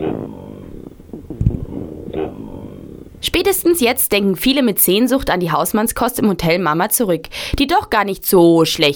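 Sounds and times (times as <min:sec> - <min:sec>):
stomach growling: 0:00.0 - 0:03.8
speech: 0:03.3 - 0:08.9.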